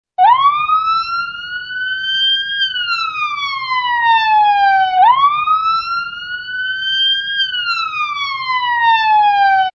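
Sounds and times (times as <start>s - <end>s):
police ambulance siren: 0.2s - 9.7s.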